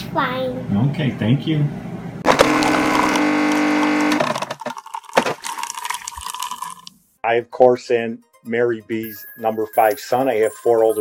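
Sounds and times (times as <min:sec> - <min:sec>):
speech: 0:00.1 - 0:01.9, 0:07.3 - 0:10.9
coffee maker whirring and hissing as it dispenses: 0:02.3 - 0:06.9.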